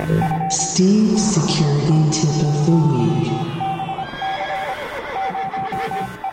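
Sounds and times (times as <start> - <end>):
speech: 0.1 - 3.5
horse neighing: 4.0 - 6.2.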